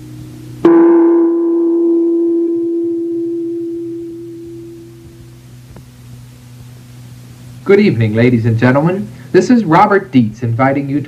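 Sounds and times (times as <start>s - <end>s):
radio time signal tone: 0.6s - 5.2s
speech: 7.7s - 11.0s.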